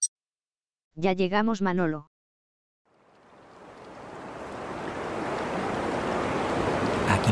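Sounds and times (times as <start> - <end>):
speech: 1.0 - 2.1
rough surf roaring at a surfing beach in Rincón Puerto Rico: 3.0 - 7.2
gusty wind at a beach: 3.3 - 7.2.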